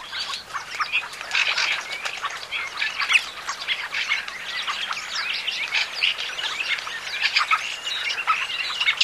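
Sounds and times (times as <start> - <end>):
fieldfare chattering song: 0.0 - 9.0.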